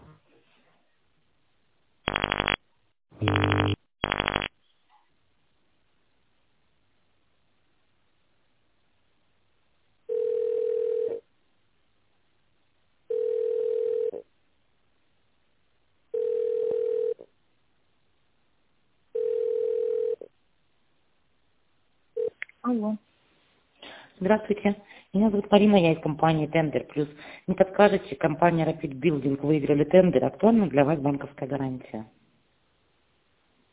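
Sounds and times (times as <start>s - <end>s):
telephone dialing tones while a call is transferred: 2.1s - 2.6s, 3.2s - 4.5s, 19.2s - 20.2s
telephone ringback tones while a call is transferred to a sales department: 10.1s - 11.2s, 13.1s - 14.2s, 16.2s - 17.2s, 19.2s - 20.3s
speech: 24.2s - 32.2s.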